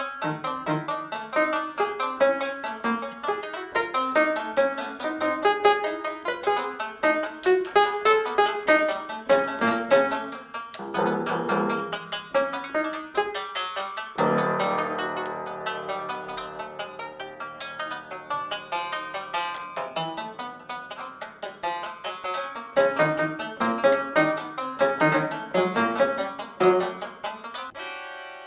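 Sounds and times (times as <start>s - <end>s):
piano improvisation: 0.2s - 20.7s, 22.8s - 27.1s.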